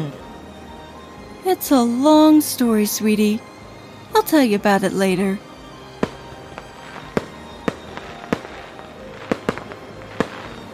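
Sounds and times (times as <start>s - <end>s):
speech: 1.5s - 3.5s, 4.2s - 5.5s
fireworks exploding: 5.6s - 10.7s.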